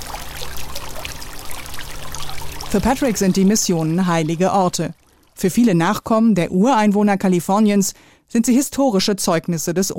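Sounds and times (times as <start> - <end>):
water fountains splashing in the gardens of a historic mission: 0.0 - 6.1
speech: 2.7 - 9.9.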